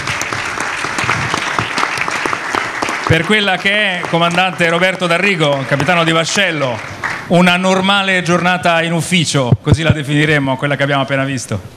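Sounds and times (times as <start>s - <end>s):
audience applause: 0.0s - 8.6s
speech: 3.1s - 11.7s.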